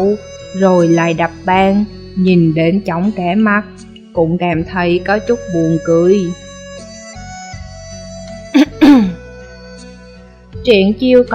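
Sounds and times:
speech: 0.0s - 6.4s, 10.6s - 11.3s
teacher dry coughing: 8.6s - 9.2s.

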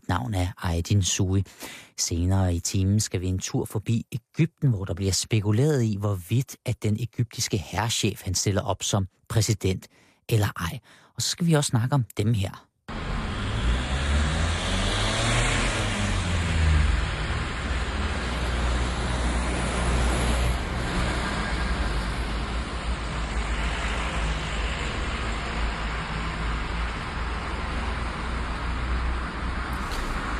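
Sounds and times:
speech: 0.1s - 13.0s
cars driving past on a road: 12.9s - 30.3s.

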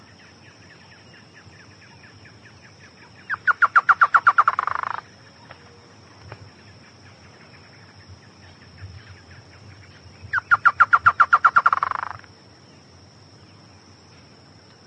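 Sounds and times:
Chotoy spinetail Schoeniophylax phryganophilus rattling song: 3.2s - 5.0s, 10.2s - 12.3s.

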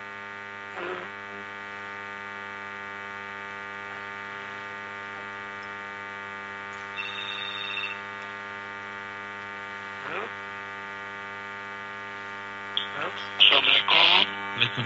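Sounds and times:
steady low electrical hum: 0.5s - 14.8s
speech: 0.8s - 1.2s, 14.6s - 14.8s
telephone ringing during a studio call-in: 6.8s - 8.2s.

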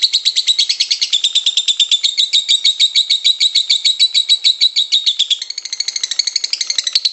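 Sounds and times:
pet lovebird trilling: 0.0s - 7.1s.

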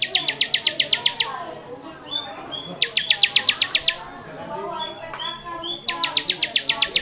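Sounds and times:
bar-winged prinia singing sharp ticking notes: 0.0s - 1.4s, 2.1s - 4.0s, 4.8s - 7.0s
bar-winged prinia soft whistles and chatter: 0.0s - 7.0s.

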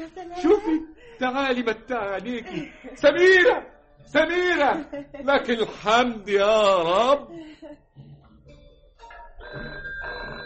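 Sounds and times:
speech: 0.0s - 8.1s
telephone ringing with a bright electronic ring: 9.0s - 10.4s.

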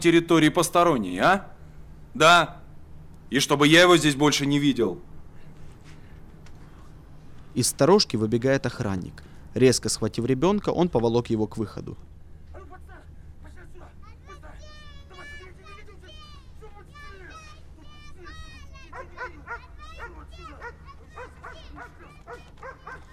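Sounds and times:
speech: 0.0s - 2.6s, 3.3s - 5.1s, 7.6s - 12.1s
dog barking and yipping: 18.8s - 23.1s.

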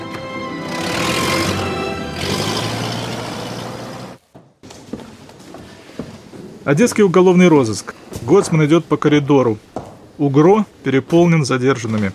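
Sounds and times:
car engine revving as the car pulls away: 0.1s - 4.2s
speech: 6.7s - 12.1s.

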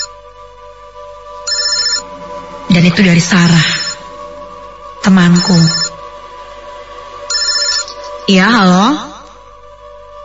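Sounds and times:
higher, brighter telephone tone: 1.4s - 2.2s, 3.4s - 4.3s, 5.3s - 6.1s, 7.3s - 8.2s
telephone ringing with a steady electronic ringtone: 1.5s - 2.1s, 3.4s - 4.1s, 5.3s - 6.0s, 7.3s - 8.2s
speech: 2.8s - 3.9s, 5.0s - 5.9s, 8.3s - 9.1s.

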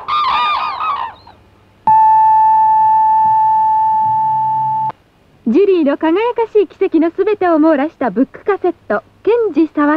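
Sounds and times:
radio noon time signal tone: 1.8s - 5.1s
speech: 5.5s - 9.9s.

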